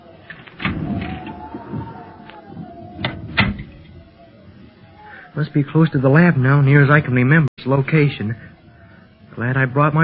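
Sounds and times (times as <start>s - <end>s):
door opening on the way to a laboratory: 0.2s - 4.1s
speech: 5.4s - 8.5s, 9.4s - 10.0s.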